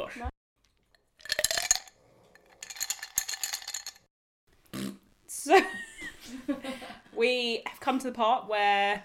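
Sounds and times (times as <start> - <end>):
speech: 0.1 - 0.4, 5.5 - 9.0
glasses clinking together in a birthday toast: 1.2 - 4.1.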